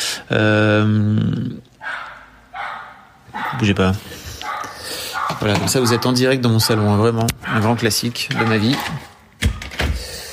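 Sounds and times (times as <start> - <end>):
speech: 0.3 - 2.0, 3.5 - 4.2, 5.4 - 9.1
dog barking in a living room: 1.8 - 3.8, 4.4 - 9.2.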